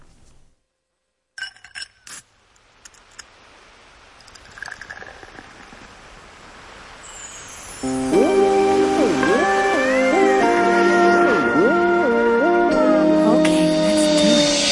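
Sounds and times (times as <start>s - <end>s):
hissing noise: 0.0s - 14.6s
ice cubes clinking in a glass: 4.2s - 5.7s.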